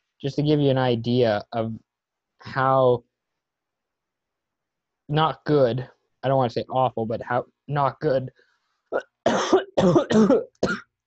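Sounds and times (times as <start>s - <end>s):
speech: 0.2s - 3.1s, 5.1s - 10.8s
person coughing: 9.0s - 10.9s.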